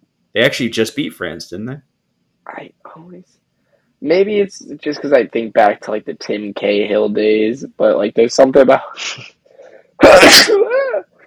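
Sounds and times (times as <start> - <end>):
speech: 0.4 - 1.9, 2.6 - 3.4, 4.0 - 9.4, 10.0 - 11.1
loud sneeze trailing into a vocal squeal: 9.0 - 9.4, 10.0 - 10.8.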